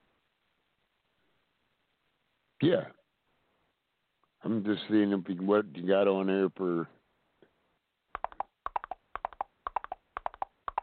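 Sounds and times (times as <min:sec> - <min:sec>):
speech: 0:02.6 - 0:03.0, 0:04.4 - 0:07.0
horse hooves clip-clopping: 0:08.2 - 0:10.8.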